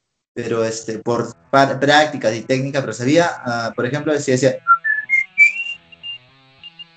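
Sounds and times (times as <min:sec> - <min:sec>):
speech: 0:00.4 - 0:04.8
person whistling clear pure notes: 0:04.7 - 0:05.8.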